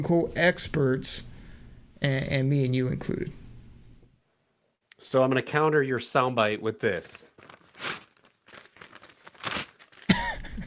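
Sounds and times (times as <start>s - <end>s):
speech: 0.0s - 1.3s, 2.0s - 3.4s, 5.0s - 8.0s
paper mock draft being ripped up: 7.4s - 10.1s.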